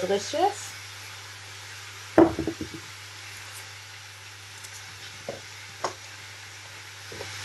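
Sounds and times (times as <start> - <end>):
speech: 0.0 - 0.8
diced meat sizzling in a pan: 0.0 - 7.4
utensil knocks: 2.2 - 2.8.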